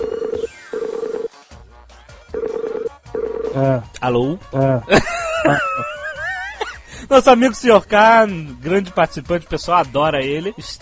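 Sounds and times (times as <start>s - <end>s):
telephone call being placed with electronic tones: 0.0s - 1.3s, 2.4s - 3.7s
speech: 3.6s - 5.9s, 7.1s - 10.8s
laughter: 4.9s - 6.8s.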